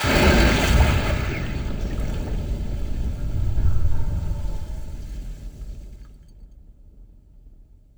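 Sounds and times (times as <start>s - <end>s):
airframe crashing into water: 0.0s - 5.2s.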